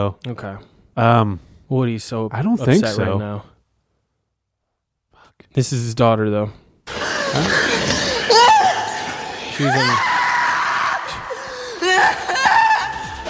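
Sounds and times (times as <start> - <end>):
speech: 0.0 - 3.5, 5.4 - 8.1, 9.6 - 10.2
woman screaming in a played film clip: 7.0 - 13.2.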